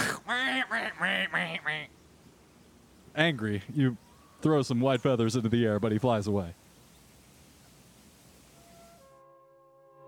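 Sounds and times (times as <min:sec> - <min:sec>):
ducks quacking in a video game: 0:00.0 - 0:02.0
speech: 0:00.3 - 0:02.0, 0:03.2 - 0:06.6.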